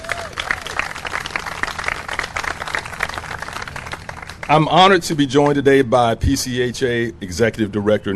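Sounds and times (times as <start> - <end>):
audience applause: 0.0 - 4.7
speech: 4.5 - 8.1.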